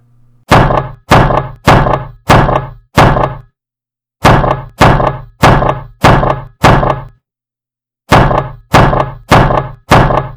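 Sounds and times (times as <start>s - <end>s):
heavy knocks on a wooden door of lodgings: 0.5s - 3.5s, 4.2s - 7.2s, 8.1s - 10.3s.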